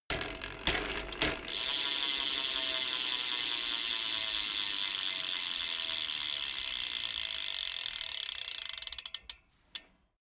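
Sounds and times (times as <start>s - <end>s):
BMX bike pedaling: 0.0s - 9.8s.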